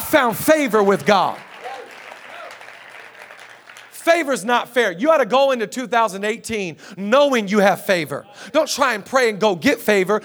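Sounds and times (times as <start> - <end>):
crowd clapping in a large room: 0.0 - 4.8
speech: 0.1 - 1.5, 4.0 - 10.2.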